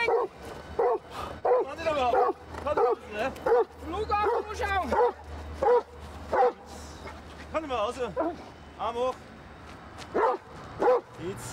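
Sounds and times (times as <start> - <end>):
giant schnauzer guard dog barking during a protection exercise: 0.0 - 6.7, 10.1 - 11.1
speech: 8.0 - 9.3.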